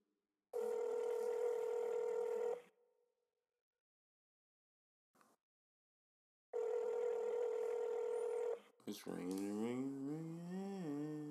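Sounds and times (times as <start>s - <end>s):
phone line ringing tone: 0.6s - 2.7s, 6.6s - 8.6s
speech: 8.9s - 11.2s.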